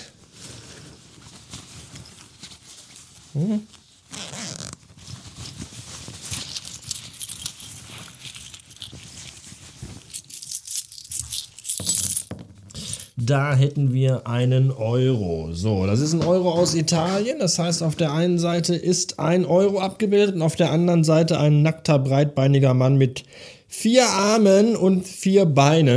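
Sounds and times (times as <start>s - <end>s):
fabric rustling as someone digs through jacket pockets: 0.0s - 12.7s
jacket zipper: 3.3s - 5.6s, 6.2s - 11.6s
speech: 3.4s - 3.8s, 13.3s - 25.9s.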